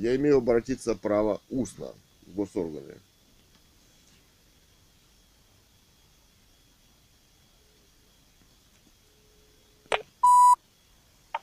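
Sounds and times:
speech: 0.0 - 3.1
electronic telephone beep after the other side hangs up: 10.2 - 10.6.

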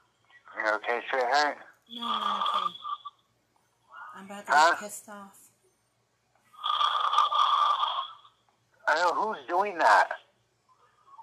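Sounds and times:
speech: 0.7 - 2.8, 4.2 - 5.4, 8.9 - 10.2
loud drawn-out snore with a harsh rattling rasp: 6.6 - 8.2.

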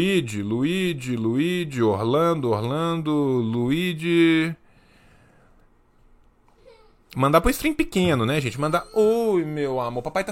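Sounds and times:
speech: 0.0 - 4.6, 7.1 - 10.3
baby whimpering: 6.5 - 7.1, 8.6 - 9.5.

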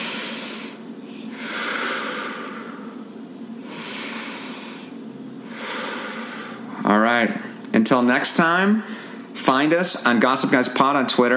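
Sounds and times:
slow deep breaths: 0.0 - 7.6, 8.8 - 9.4
speech: 6.8 - 11.3.

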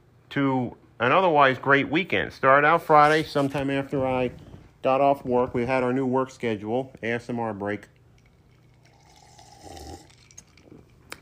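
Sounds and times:
speech: 0.4 - 8.0
gulping cotton candy flavored water: 7.9 - 11.1.

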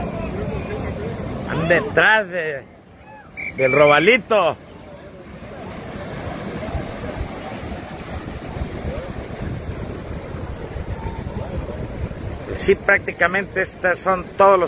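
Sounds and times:
fishing boat motors rumbling: 0.0 - 14.6
rushing water: 0.0 - 14.6
speech: 1.6 - 2.7, 3.6 - 4.6, 12.7 - 14.6
gusty wind buffeting the microphone: 5.6 - 14.6.

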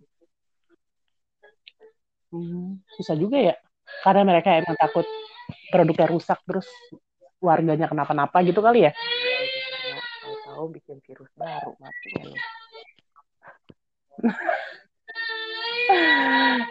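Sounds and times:
speech: 2.3 - 9.1, 10.6 - 12.6, 14.2 - 14.8
baby crying after waking up: 3.9 - 6.2, 8.4 - 10.7, 11.5 - 13.0, 14.5 - 16.6.

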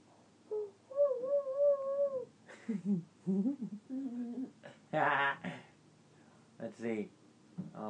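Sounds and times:
young child cooing and babbling: 0.5 - 2.3
young child imitating a mourning dove's coo: 0.5 - 2.3, 3.3 - 4.6
speech: 2.7 - 5.6, 6.6 - 7.8.

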